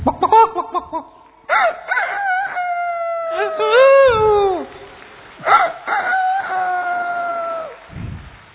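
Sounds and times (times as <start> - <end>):
person imitating rooster crowing: 1.5 - 4.7, 5.4 - 7.8.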